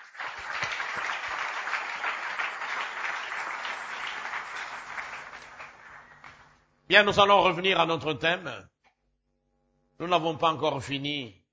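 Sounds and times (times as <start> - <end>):
church congregation applauding after prayer: 0.0 - 6.7
speech: 6.9 - 8.8, 10.0 - 11.4.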